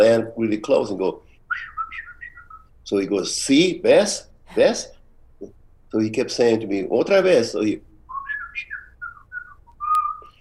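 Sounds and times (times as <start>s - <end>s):
speech: 0.0s - 1.7s, 2.9s - 7.9s
man whistling a birdlike call imitating birds: 1.5s - 2.7s, 8.1s - 10.3s.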